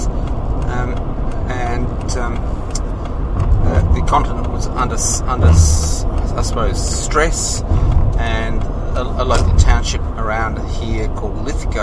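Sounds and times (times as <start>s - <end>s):
truck engine drone on the road: 0.0s - 11.8s
indistinct voices: 3.5s - 6.9s
speech: 4.1s - 11.8s.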